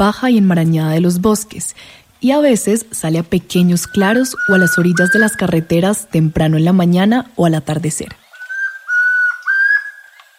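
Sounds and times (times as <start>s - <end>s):
speech: 0.0s - 8.2s
chestnut-crowned antpitta song of clear pure whistled notes: 3.6s - 5.7s, 8.2s - 10.3s.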